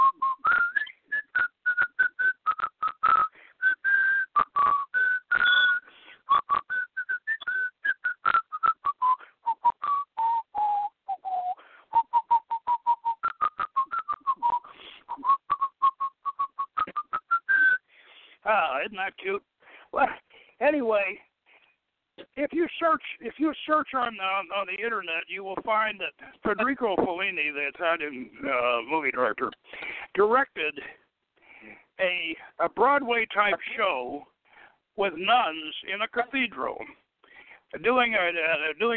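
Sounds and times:
person whistling a song melody: 0.0s - 17.9s
breaths: 3.2s - 3.6s, 5.8s - 6.3s, 9.2s - 9.5s, 11.4s - 12.0s, 14.6s - 15.2s, 17.8s - 18.4s, 19.6s - 20.6s, 21.4s - 21.8s, 29.6s - 30.2s, 30.8s - 32.6s, 34.4s - 34.9s, 37.0s - 37.7s
speech: 18.9s - 21.2s, 22.4s - 29.6s, 30.2s - 31.0s, 32.0s - 34.3s, 35.0s - 36.9s, 37.7s - 38.9s.

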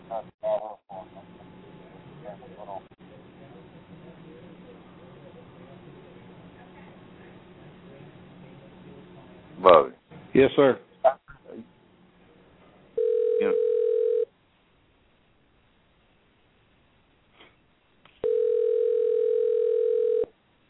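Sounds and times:
speech: 0.1s - 0.4s, 10.4s - 10.9s
steady loud telephone tone: 13.0s - 14.3s, 18.2s - 20.3s.

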